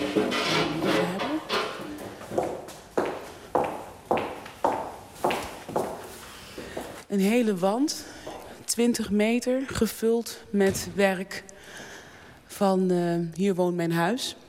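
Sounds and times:
footsteps on a hard indoor floor: 0:00.0 - 0:07.1, 0:08.2 - 0:08.6
speech: 0:07.2 - 0:08.2, 0:08.8 - 0:11.8, 0:12.6 - 0:14.4.

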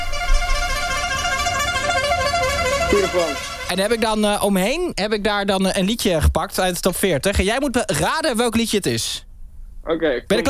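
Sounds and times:
handheld horn honking: 0:00.0 - 0:04.2
speech: 0:02.9 - 0:10.4.

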